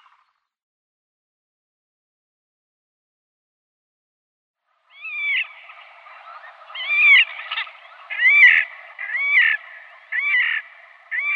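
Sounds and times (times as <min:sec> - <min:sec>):
Slavonian grebe squealing rising nasal calls with trilled endings: 0:05.0 - 0:11.3.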